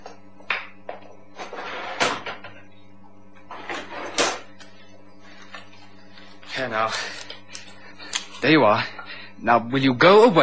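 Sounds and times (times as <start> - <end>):
low steady hum: 0.0 - 10.4
cash drawer sliding open and shut: 1.4 - 2.4, 3.5 - 4.5
speech: 6.6 - 7.2, 8.4 - 10.4.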